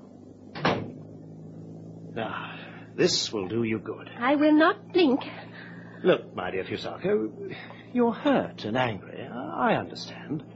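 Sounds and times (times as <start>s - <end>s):
door closing thud: 0.5s - 1.0s
speech: 2.2s - 10.5s.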